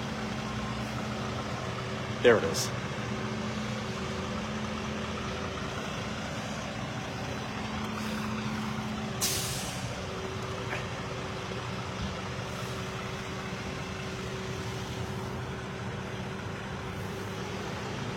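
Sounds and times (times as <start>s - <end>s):
heavy tow truck engine rumbling: 0.0s - 18.1s
speech: 2.2s - 2.8s
tow truck air brakes hissing: 7.8s - 10.0s.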